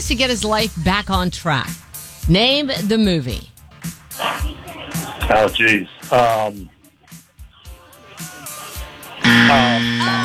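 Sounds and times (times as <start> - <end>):
speech: 0.0 - 4.0, 5.3 - 6.7, 9.2 - 10.2
laughter: 0.1 - 10.2
loud harsh game-show buzzer: 4.2 - 6.7, 9.2 - 10.2.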